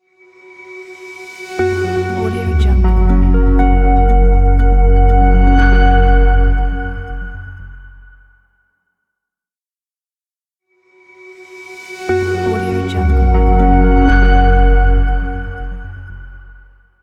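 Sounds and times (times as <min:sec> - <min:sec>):
ambient opener intro reveal ident: 0:00.4 - 0:08.4, 0:11.4 - 0:16.8.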